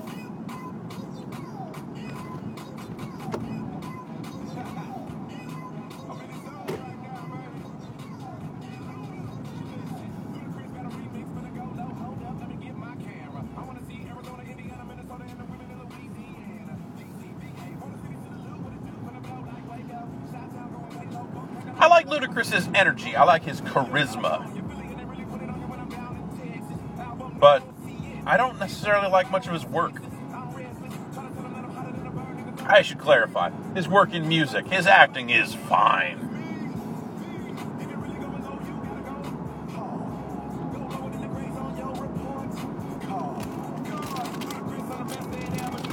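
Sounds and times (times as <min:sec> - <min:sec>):
dense rumble of slow freeway traffic: 0:00.0 - 0:45.9
speech: 0:22.1 - 0:24.5, 0:28.3 - 0:30.1, 0:32.7 - 0:36.3.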